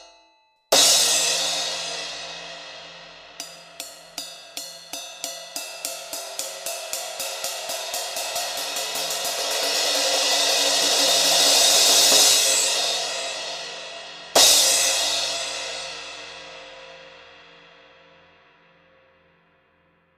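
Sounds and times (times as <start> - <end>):
18 inch brilliant mellow crash cymbal: 0.7 - 19.5.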